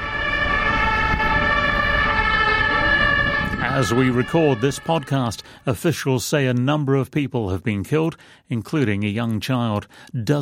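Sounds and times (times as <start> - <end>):
ambulance emergency sirens blaring: 0.0 - 6.2
speech: 3.8 - 10.3.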